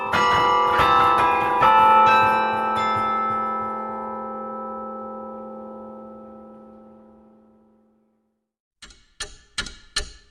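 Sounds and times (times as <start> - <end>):
carillon bells playing a melody: 0.0 - 7.1.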